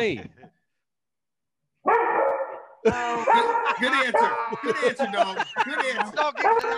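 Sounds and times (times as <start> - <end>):
speech: 0.0 - 0.5, 2.8 - 6.7
dog barking, yowling and whining with pitch-sliding barks: 1.8 - 4.6, 6.4 - 6.7
laughter: 2.8 - 6.7.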